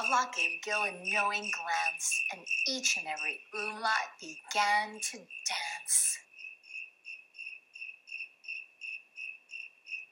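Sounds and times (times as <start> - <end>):
speech: 0.0 - 6.2
crickets chirping at night: 0.0 - 10.1.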